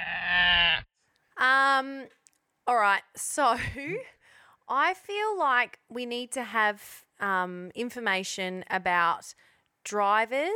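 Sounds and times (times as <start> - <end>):
goat bleating: 0.0 - 0.8
speech: 2.7 - 10.5.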